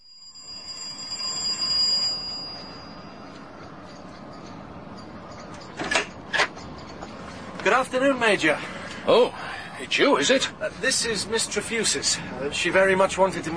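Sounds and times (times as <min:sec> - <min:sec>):
shrill electric doorbell ringing: 0:00.0 - 0:04.1
speech: 0:07.8 - 0:13.5.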